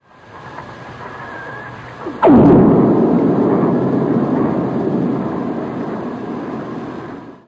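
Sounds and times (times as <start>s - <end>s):
lightning over the Salish Sea: 2.0s - 7.4s.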